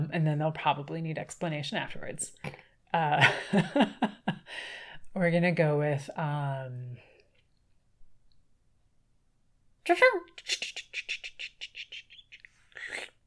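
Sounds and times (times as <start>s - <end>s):
speech: 0.1s - 7.0s, 9.9s - 11.1s
monkey chattering: 10.4s - 13.1s.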